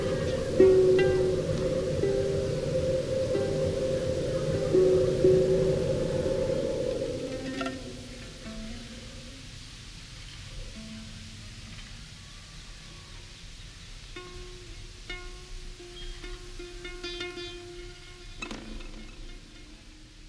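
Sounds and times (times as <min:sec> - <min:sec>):
loud rushing wind roar on a mountain: 0:00.0 - 0:09.7
wind-driven aeolian lute strings humming on a mountain: 0:00.0 - 0:12.2, 0:14.0 - 0:20.2
noise from surrounding villages: 0:00.0 - 0:20.2.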